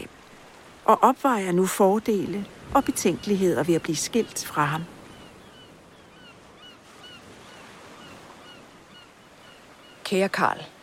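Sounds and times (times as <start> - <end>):
ocean surf rolling onto the shore: 0.0 - 10.8
speech: 0.9 - 5.0, 10.1 - 10.8
birds chirping and honking faintly overhead: 2.8 - 10.1.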